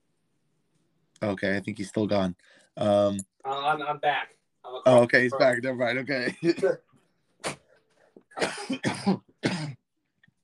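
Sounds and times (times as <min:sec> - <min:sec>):
speech: 0:01.2 - 0:07.6, 0:08.4 - 0:09.3
harsh coughs: 0:08.3 - 0:09.8.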